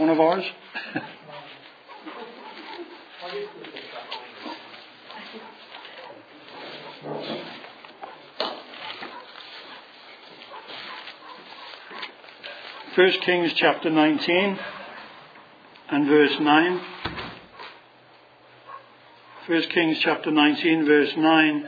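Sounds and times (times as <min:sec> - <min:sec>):
speech: 0:00.1 - 0:01.2, 0:03.3 - 0:03.7, 0:13.0 - 0:14.8, 0:15.9 - 0:17.0, 0:19.5 - 0:21.6
dog barking outside: 0:01.9 - 0:07.2, 0:08.0 - 0:12.1, 0:18.6 - 0:19.5.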